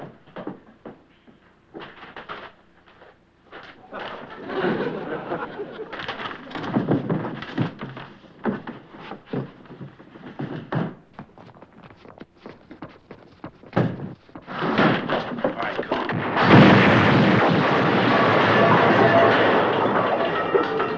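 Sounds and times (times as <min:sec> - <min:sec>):
laughter: 0:03.8 - 0:06.6
bombs exploding: 0:13.8 - 0:20.9.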